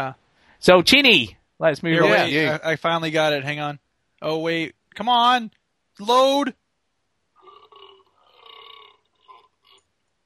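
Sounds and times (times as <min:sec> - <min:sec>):
speech: 0:00.0 - 0:06.6
long drawn-out belch and shorter burps: 0:07.4 - 0:09.9.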